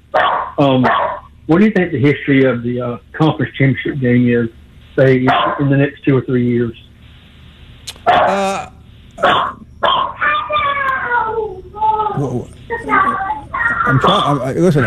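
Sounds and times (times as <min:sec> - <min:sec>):
dog barking unhappily and whining: 0:00.2 - 0:01.3, 0:05.3 - 0:05.7, 0:08.0 - 0:08.4, 0:09.2 - 0:14.3
speech: 0:00.6 - 0:06.9, 0:08.0 - 0:09.5, 0:13.9 - 0:14.8.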